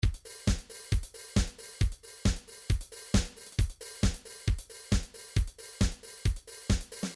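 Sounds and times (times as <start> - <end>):
classic trance MIDI beat loops: 0.0 - 7.1.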